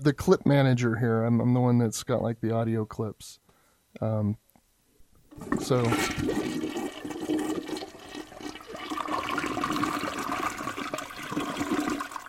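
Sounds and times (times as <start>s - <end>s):
speech: 0.0s - 3.4s, 4.0s - 4.4s, 5.4s - 6.6s
weak low-flow toilet flush: 5.3s - 12.2s.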